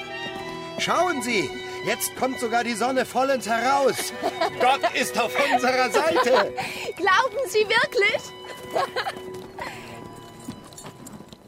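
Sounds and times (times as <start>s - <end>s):
horses' hooves clip-clopping: 0.0s - 11.4s
speech: 0.8s - 9.3s
laughter: 3.6s - 7.0s, 8.4s - 9.9s.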